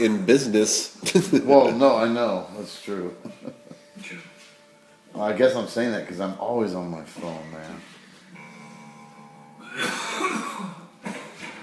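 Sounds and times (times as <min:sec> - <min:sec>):
speech: 0:00.0 - 0:03.4, 0:05.2 - 0:07.9
man having a coughing attack: 0:09.7 - 0:11.5.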